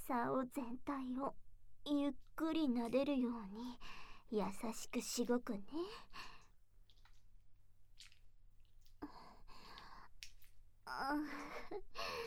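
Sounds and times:
speech: 0.1s - 6.4s, 10.9s - 12.2s
wet squishing of lotion-covered skin: 6.4s - 10.8s.

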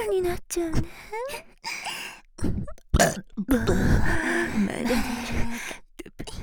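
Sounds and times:
speech: 0.2s - 1.8s, 3.0s - 5.4s
person burping: 3.0s - 3.9s.

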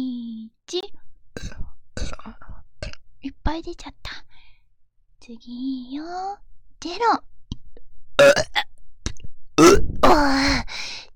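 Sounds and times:
person burping: 1.4s - 2.2s, 8.2s - 8.7s, 9.6s - 10.4s
speech: 3.5s - 4.2s, 5.3s - 7.3s, 10.1s - 10.7s.

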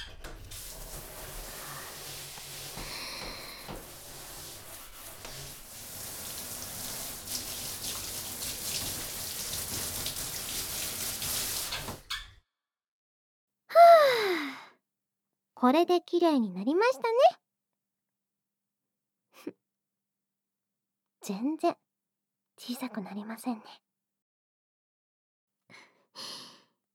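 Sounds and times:
water rinsing off after washing: 0.0s - 12.4s
speech: 15.6s - 17.4s, 21.3s - 21.8s, 22.7s - 23.9s.

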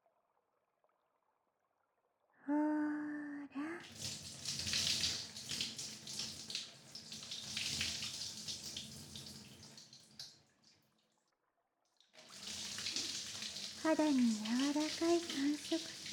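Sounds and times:
speech: 2.5s - 2.7s, 13.9s - 16.1s
warm water pouring from a tap to rinse someone off at a bath: 3.8s - 11.2s, 12.0s - 16.1s.

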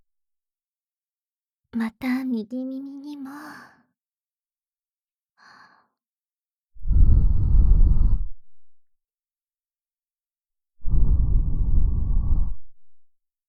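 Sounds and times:
speech: 1.7s - 3.8s
soft breath blown into the ear: 6.8s - 8.4s, 10.8s - 12.8s.

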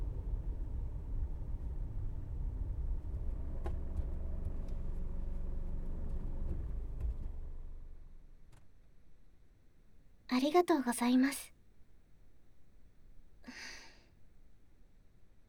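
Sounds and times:
car engine and road rumble heard from inside: 0.0s - 8.4s
speech: 10.4s - 11.5s.

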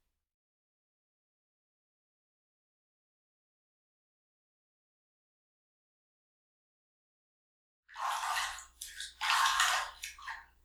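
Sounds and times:
running shower water hissing: 8.0s - 10.4s.

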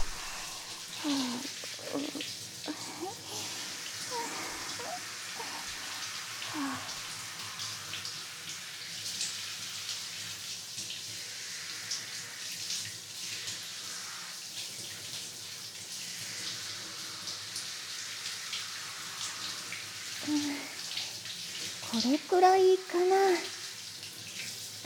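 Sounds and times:
shower water spraying during a hair rinse: 0.0s - 24.8s
speech: 22.0s - 23.6s.

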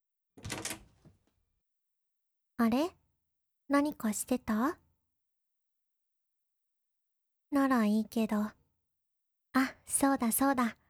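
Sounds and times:
door being opened with rattling scrape and soft click: 0.4s - 1.2s
speech: 2.6s - 3.0s, 3.7s - 4.8s, 7.5s - 8.6s, 9.5s - 10.8s.

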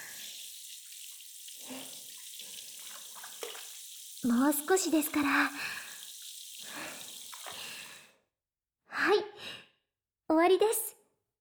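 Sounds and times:
tap water rinsing shampoo lather from a person's hair: 0.0s - 8.0s
speech: 4.2s - 5.8s.

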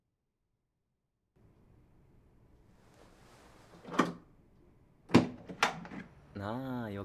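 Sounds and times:
door being opened: 3.7s - 4.2s, 5.1s - 6.2s.

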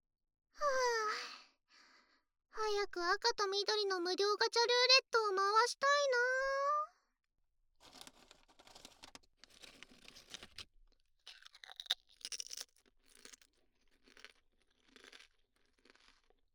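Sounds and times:
speech: 2.8s - 6.6s
crunching and chewing of lightly salted potato chips: 11.3s - 16.4s.

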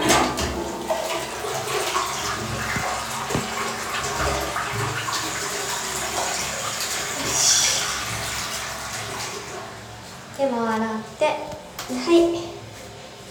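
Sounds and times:
toilet flushing with gushing water: 0.0s - 10.4s
speech: 10.5s - 11.5s, 12.1s - 12.4s.

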